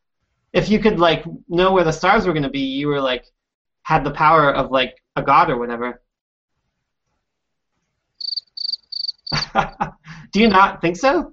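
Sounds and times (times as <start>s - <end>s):
speech: 0.6s - 6.0s, 9.5s - 11.3s
cricket chirping: 8.2s - 9.7s
laughter: 9.3s - 10.6s.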